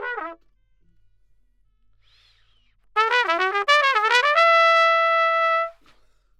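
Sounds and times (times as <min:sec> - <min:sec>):
trumpet: 0:00.0 - 0:00.5, 0:03.0 - 0:06.0.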